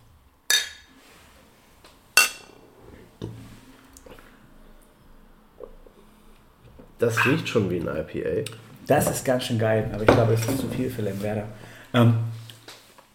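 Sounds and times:
beer glasses clinking in a toast: 2.2 - 2.6
speech: 7.0 - 12.4.

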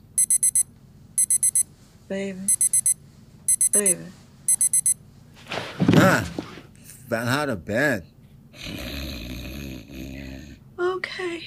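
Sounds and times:
low hum: 0.0 - 11.4
alarm clock beeping with high-pitched electronic tones: 0.2 - 0.6, 1.2 - 1.6, 2.5 - 5.0
speech: 2.1 - 2.6, 3.7 - 4.2, 6.0 - 6.4, 7.1 - 8.8, 11.2 - 11.4.

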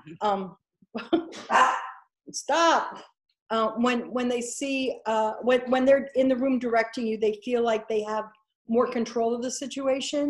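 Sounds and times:
speech: 0.1 - 10.2
dogs barking at a squirrel: 1.5 - 2.0.

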